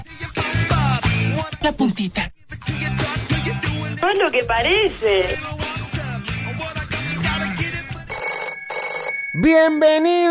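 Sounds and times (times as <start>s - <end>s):
bass-heavy music: 0.0s - 8.2s
speech: 1.6s - 2.9s, 4.0s - 5.6s, 9.4s - 10.2s
telephone ringing: 8.0s - 10.2s.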